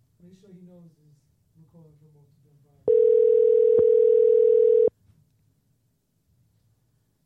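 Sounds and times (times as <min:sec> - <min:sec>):
phone call ringing tone: 0:02.9 - 0:04.9.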